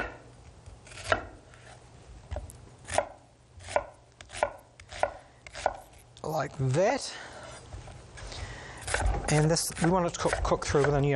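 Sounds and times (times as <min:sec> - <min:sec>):
sharp knife slicing onion thinly on a board for a stir fry: 0:00.8 - 0:01.7, 0:02.9 - 0:06.0, 0:08.8 - 0:11.1
speech: 0:06.3 - 0:07.3, 0:09.3 - 0:11.1.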